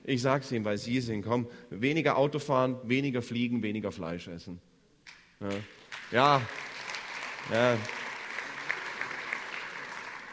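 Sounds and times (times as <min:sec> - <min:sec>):
speech: 0:00.1 - 0:04.7, 0:05.4 - 0:06.7, 0:07.5 - 0:08.0
part of an audience clapping: 0:05.4 - 0:10.3.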